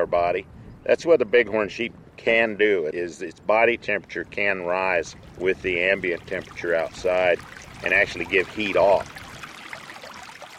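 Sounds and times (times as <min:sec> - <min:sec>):
speech: 0:00.0 - 0:09.2
water flowing through a desert canyon: 0:04.2 - 0:10.5.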